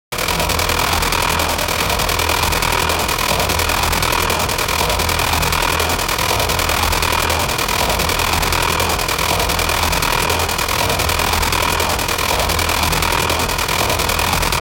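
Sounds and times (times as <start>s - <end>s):
gravity gun sound loop: 0.1s - 14.6s.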